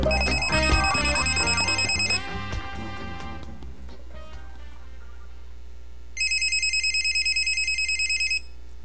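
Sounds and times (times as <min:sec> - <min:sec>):
telephone ringing with a fast electronic trill: 0:00.1 - 0:02.3, 0:06.2 - 0:08.5
low steady hum: 0:00.1 - 0:08.8.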